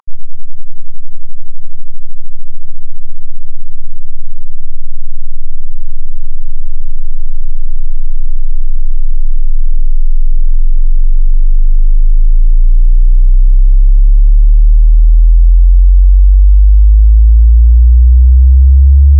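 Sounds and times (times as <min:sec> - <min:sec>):
sine wave sweep: 0:00.0 - 0:19.1.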